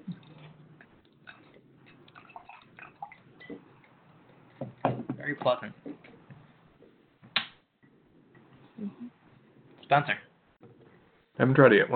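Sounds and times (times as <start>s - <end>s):
Japanese whiskey pouring into a glass: 1.3s - 4.0s
speech: 5.3s - 5.9s, 9.9s - 10.2s, 11.4s - 11.9s.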